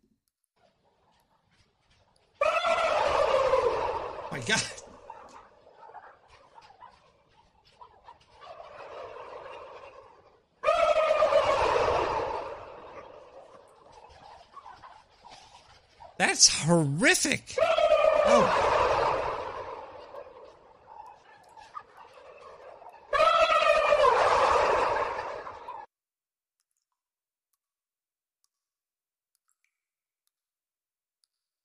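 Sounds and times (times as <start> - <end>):
turkey gobbling: 2.3 - 16.4, 17.6 - 25.9
speech: 4.4 - 4.8, 16.3 - 18.8
person exclaiming: 16.2 - 17.6.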